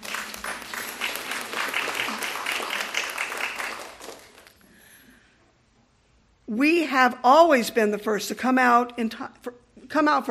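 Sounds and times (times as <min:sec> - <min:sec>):
crowd applauding: 0:00.0 - 0:04.6
speech: 0:06.5 - 0:10.2.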